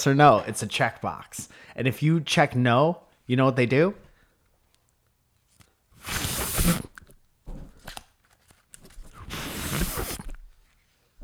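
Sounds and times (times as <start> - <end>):
speech: 0.0 - 4.0, 6.0 - 6.9
paper ripping: 6.0 - 7.2, 7.8 - 10.5.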